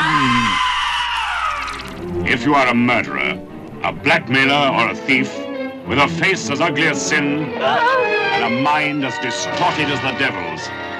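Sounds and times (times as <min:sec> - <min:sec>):
shrill horror-film trailer scream: 0:00.0 - 0:02.0
speech: 0:02.3 - 0:10.8.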